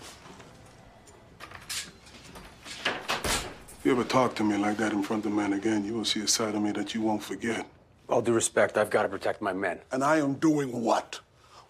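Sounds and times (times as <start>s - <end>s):
door closing: 1.3s - 4.3s
speech: 3.8s - 11.6s.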